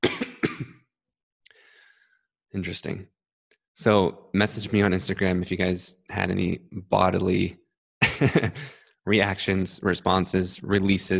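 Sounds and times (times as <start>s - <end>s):
dry hacking coughs: 0.0s - 0.9s
speech: 2.5s - 3.2s, 3.8s - 7.6s, 8.2s - 11.1s
laughter: 8.0s - 8.7s.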